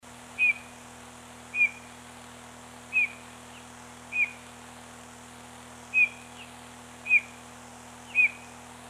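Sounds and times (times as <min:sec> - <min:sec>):
low continuous hum: 0:00.0 - 0:08.8
bird repeating brief high whistled notes: 0:00.4 - 0:00.7, 0:01.5 - 0:01.9, 0:02.9 - 0:03.2, 0:04.1 - 0:04.4, 0:05.9 - 0:06.3, 0:07.0 - 0:07.4, 0:08.1 - 0:08.5.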